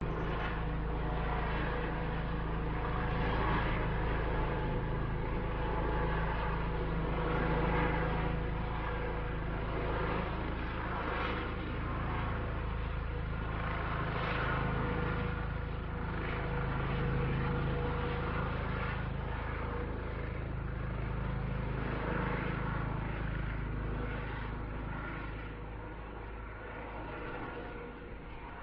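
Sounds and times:
police helicopter in Newcastle upon Tyne UK: 0.0s - 28.6s.

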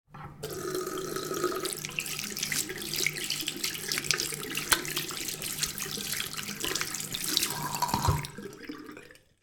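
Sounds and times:
household sink tap running: 0.4s - 8.4s
hands washing under a household sink tap: 1.5s - 8.7s.

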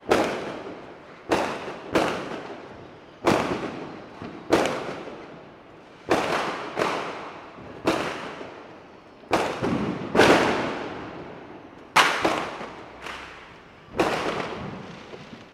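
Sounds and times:
fireworks in an urban street: 0.0s - 15.5s.

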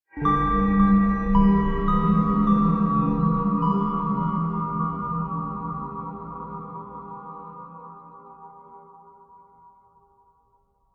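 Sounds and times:
ghostly horror nursery rhyme musical riff: 0.2s - 8.1s.

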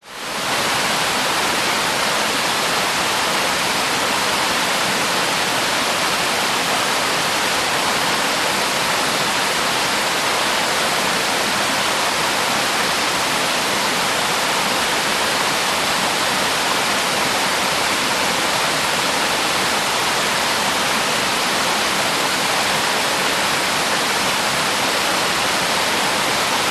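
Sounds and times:
80m high waterfall pouring into its base pool: 0.1s - 26.6s.

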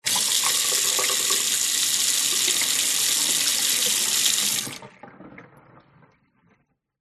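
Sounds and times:
tap water running into a metal household sink without plug: 0.0s - 5.4s.

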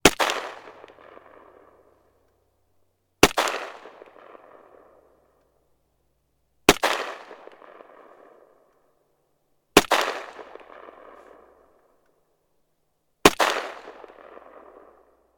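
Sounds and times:
SKS rifle: 0.0s - 2.4s, 3.2s - 5.6s, 6.6s - 9.0s, 9.7s - 12.3s, 13.2s - 15.3s.

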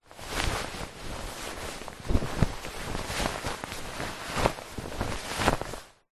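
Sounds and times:
shirt handling foley: 0.0s - 6.0s.

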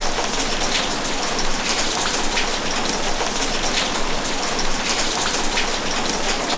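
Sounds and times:
medium rain dripping on a street: 0.0s - 6.5s.

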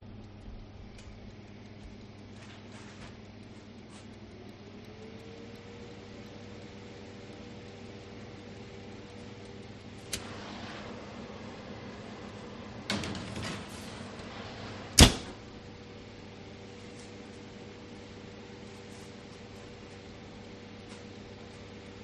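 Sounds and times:
industrial oven fan whirring: 0.0s - 22.0s.

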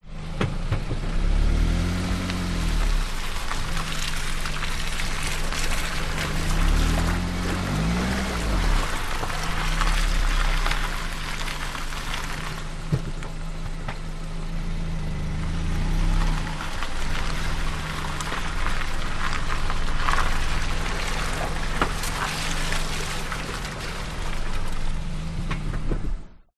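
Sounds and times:
transport car manoeuvring slowly on wet muddy ground: 0.0s - 26.5s.

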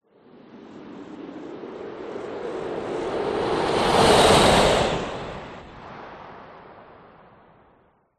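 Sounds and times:
fantasy magic spell wind whoosh: 0.8s - 6.3s.

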